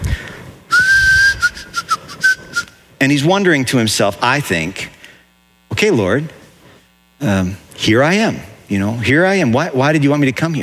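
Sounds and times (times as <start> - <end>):
person whistling a tune: 0.7 - 2.7
speech: 3.0 - 4.9, 5.8 - 6.4, 7.2 - 10.6.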